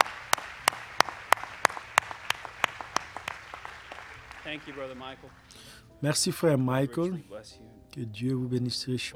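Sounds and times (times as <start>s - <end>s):
standing audience applauding a man who has sung: 0.0s - 6.2s
laughter: 0.0s - 8.8s
speech: 4.5s - 9.1s.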